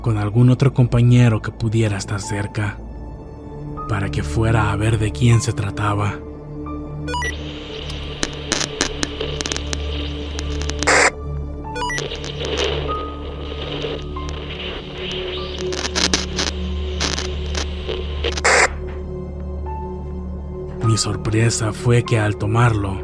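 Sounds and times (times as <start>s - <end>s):
speech: 0.0s - 2.8s, 3.9s - 6.3s, 21.0s - 23.0s
crackling bursts and pops of radio static: 7.1s - 11.2s, 11.8s - 19.1s
harsh radio static: 7.1s - 11.2s, 11.8s - 18.9s.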